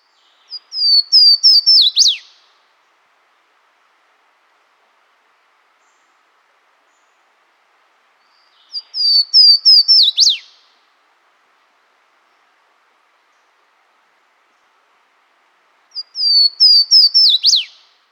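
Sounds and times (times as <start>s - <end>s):
Swainson's warbler singing: 0.0s - 2.4s, 8.2s - 10.6s, 16.0s - 17.9s.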